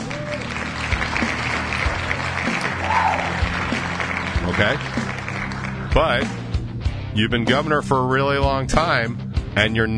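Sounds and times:
applause: 0:00.0 - 0:06.4
speech: 0:04.6 - 0:05.0, 0:06.0 - 0:06.4, 0:07.2 - 0:09.9.

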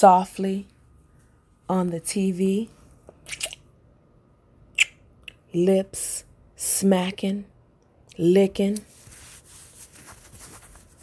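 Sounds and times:
speech: 0:00.0 - 0:00.7, 0:01.7 - 0:03.5, 0:05.5 - 0:07.5, 0:08.2 - 0:08.9
bed covers rustling: 0:08.8 - 0:11.0.

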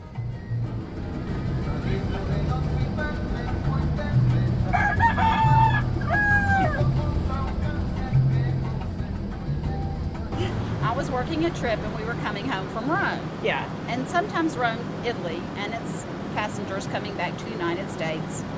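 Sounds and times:
moving bus engine rumbling: 0:00.0 - 0:18.5
road noise of a moving bus: 0:00.0 - 0:18.5
rooster crowing on a moving bus: 0:04.7 - 0:07.0
speech: 0:11.4 - 0:18.5.

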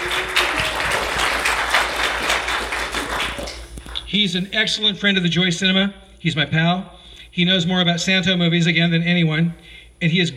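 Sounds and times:
crowd applauding: 0:00.0 - 0:04.0
speech: 0:04.1 - 0:10.3.

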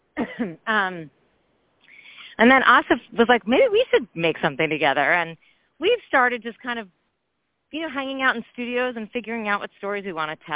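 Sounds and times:
person coughing: 0:00.2 - 0:00.6
speech: 0:00.4 - 0:01.2, 0:02.4 - 0:07.0, 0:07.7 - 0:10.5.

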